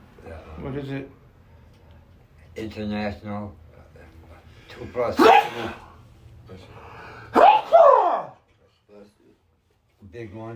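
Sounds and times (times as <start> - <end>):
speech: 0.5 - 1.2, 2.6 - 3.6, 4.8 - 5.9, 6.5 - 6.8, 10.0 - 10.5
person sneezing: 5.1 - 6.0.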